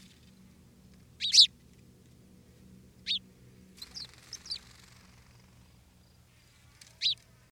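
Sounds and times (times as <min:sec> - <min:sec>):
quiet background hum: 0:00.0 - 0:07.4
house sparrow Passer domesticus chirping: 0:01.2 - 0:01.6, 0:03.0 - 0:05.5, 0:07.0 - 0:07.2.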